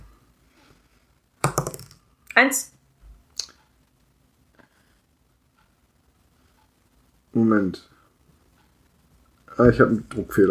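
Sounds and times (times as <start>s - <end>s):
small six-sided die clattering across a hard tabletop: 1.4s - 2.0s
speech: 2.4s - 2.8s, 7.4s - 7.9s, 9.6s - 10.4s.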